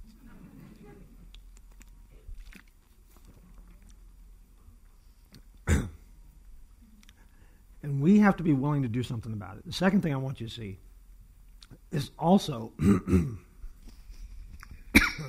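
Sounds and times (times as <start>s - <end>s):
faint steady noise: 0.0s - 15.2s
speaker with a throat problem clearing throat: 5.6s - 6.0s, 12.8s - 13.5s, 14.9s - 15.2s
speech: 8.3s - 10.9s, 11.9s - 13.4s.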